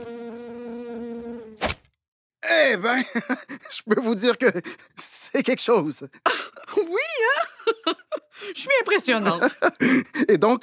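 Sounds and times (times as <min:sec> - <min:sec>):
small fruit fly buzzing in a studio: 0:00.0 - 0:01.8
speech: 0:02.7 - 0:10.6
laughter: 0:02.9 - 0:04.9, 0:06.2 - 0:10.5.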